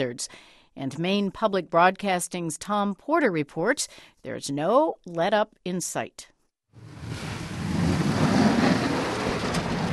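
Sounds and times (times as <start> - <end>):
speech: 0.0 - 7.3
municipal snowplow truck engine rumble in downtown Portland, Maine: 6.8 - 9.9.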